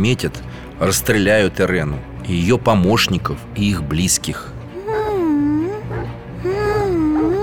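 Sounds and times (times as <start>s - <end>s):
speech: 0.0s - 4.6s
baby crying: 4.7s - 7.4s.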